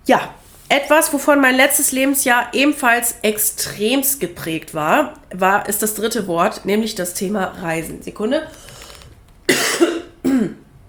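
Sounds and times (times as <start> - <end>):
speech: 0.0 - 8.8
person coughing: 9.5 - 10.7.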